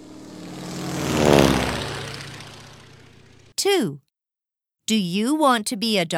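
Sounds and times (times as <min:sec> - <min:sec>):
propeller airplane engine droning past: 0:00.0 - 0:03.5
speech: 0:03.6 - 0:04.1, 0:04.9 - 0:06.1.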